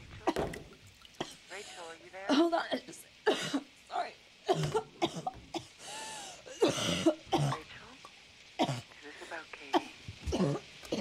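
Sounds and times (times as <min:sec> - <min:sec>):
woman coughing with throaty hacking: 0:00.2 - 0:00.6, 0:01.2 - 0:03.7, 0:04.5 - 0:05.8, 0:06.4 - 0:07.7, 0:08.6 - 0:08.9, 0:09.7 - 0:11.0
speech: 0:01.6 - 0:03.6
brief breaths: 0:05.8 - 0:06.5, 0:08.9 - 0:09.4.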